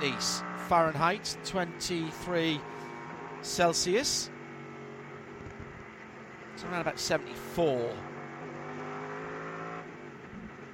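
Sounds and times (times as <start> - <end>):
speech: 0.0 - 2.8, 3.4 - 4.4, 6.6 - 8.1
race car engines roaring while braking and entering the pit lane: 0.0 - 10.7.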